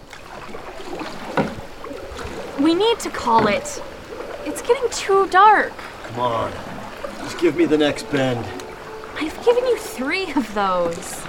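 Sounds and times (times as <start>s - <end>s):
small boat gliding along a river with wash and lapping splashes: 0.0s - 11.2s
speech: 2.6s - 8.6s, 9.2s - 11.2s.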